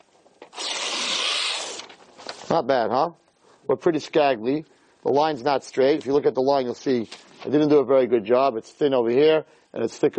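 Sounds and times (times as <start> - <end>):
sheet of paper being ripped in half: 0.4 - 2.5
speech: 2.5 - 10.1.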